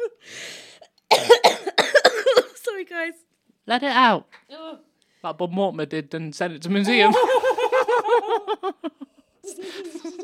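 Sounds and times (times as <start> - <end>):
sharp breathy intake of air: 0.2 - 0.8
harsh raspy coughs: 1.1 - 2.6
speech: 3.1 - 4.4, 5.2 - 7.4
laughter: 6.9 - 10.2.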